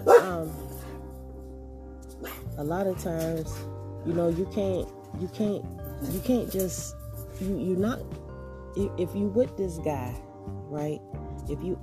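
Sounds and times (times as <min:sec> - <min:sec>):
dog barking at passing dog and howling: 0:00.0 - 0:01.0, 0:02.2 - 0:03.8
speech: 0:02.6 - 0:08.2, 0:08.8 - 0:11.8.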